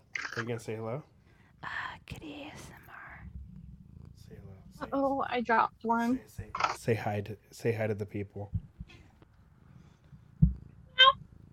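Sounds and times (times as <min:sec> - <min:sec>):
cat meowing: 0:00.0 - 0:00.4
speech: 0:00.4 - 0:02.7, 0:04.8 - 0:08.6
soft low thump: 0:08.4 - 0:09.1, 0:10.3 - 0:10.8.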